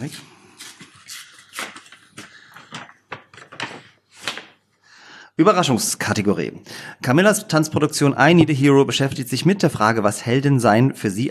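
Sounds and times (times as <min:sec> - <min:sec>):
speech: 0:00.0 - 0:00.3, 0:05.4 - 0:11.2
paper envelope being opened: 0:00.6 - 0:04.6.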